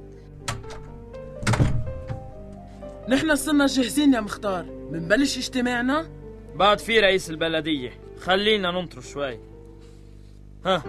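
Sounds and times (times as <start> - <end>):
door being opened with dull wooden thunks: 0.4 - 2.6
faint steady hum: 2.3 - 10.8
speech: 3.1 - 9.5, 10.6 - 10.8.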